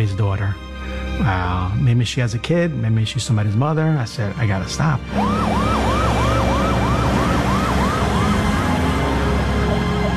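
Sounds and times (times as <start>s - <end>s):
speech: 0.0s - 5.8s
ambulance siren wailing: 5.0s - 10.1s
traffic rumble: 5.1s - 10.1s.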